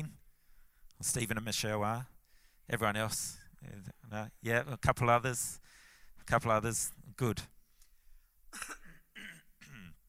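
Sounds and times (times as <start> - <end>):
speech: 1.0 - 7.5
throat clearing with coughing during a church service: 8.5 - 10.0.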